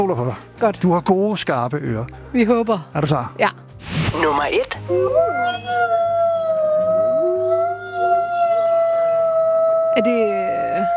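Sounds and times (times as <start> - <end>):
speech: 0.0 - 6.3, 10.0 - 10.9
several wolves howling together in a sustained chorus: 4.9 - 10.9.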